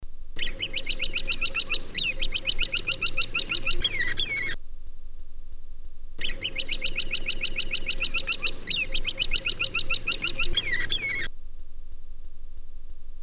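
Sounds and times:
caladi woodpecker: 0.4 - 4.6, 6.2 - 11.3.

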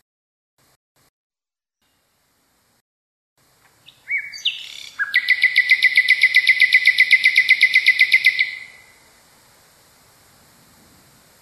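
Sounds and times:
common nightingale singing: 3.8 - 9.1.

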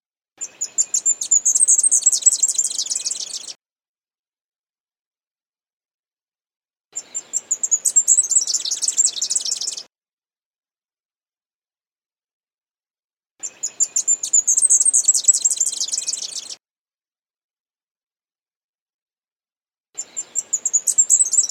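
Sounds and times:
leaf warbler song of quick chirps building into a fast trill: 0.4 - 3.6, 7.0 - 9.9, 13.4 - 16.6, 20.0 - 21.4.

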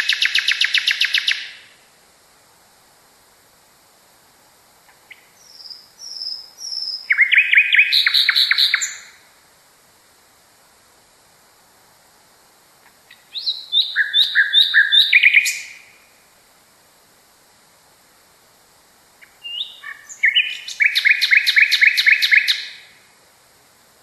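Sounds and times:
nightingale singing: 0.0 - 1.8, 4.9 - 9.3, 12.8 - 16.2, 19.2 - 23.1.

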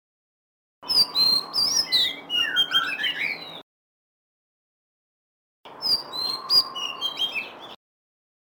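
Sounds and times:
Oriental magpie-robin singing: 0.8 - 3.6, 5.7 - 7.8.

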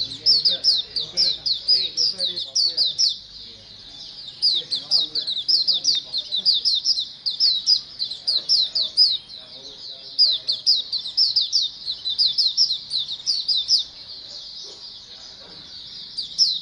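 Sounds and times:
colony of white-eyes twittering together: 0.0 - 16.6.

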